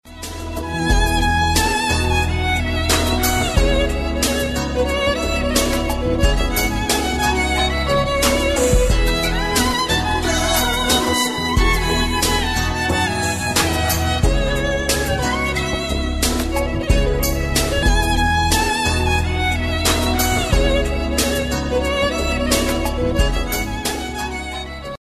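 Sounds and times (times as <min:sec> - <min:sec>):
violin ringtone: 0:00.7 - 0:24.8.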